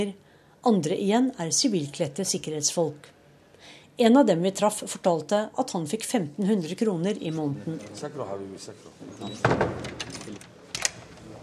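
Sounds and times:
speech: 0:00.0 - 0:10.5
door being firmly shut at a Free Syrian Army base: 0:09.2 - 0:11.2.

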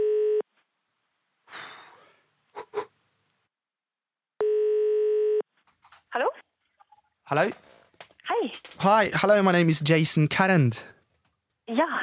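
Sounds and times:
ringback tones of an outgoing phone call: 0:00.0 - 0:00.4, 0:04.4 - 0:05.4
soft rustle: 0:05.6 - 0:08.1
speech: 0:07.3 - 0:07.6, 0:08.4 - 0:11.0.

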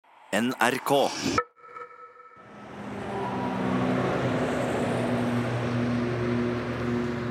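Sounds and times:
speech: 0:00.3 - 0:01.5
cars roaring past on a busy highway: 0:02.4 - 0:07.3.

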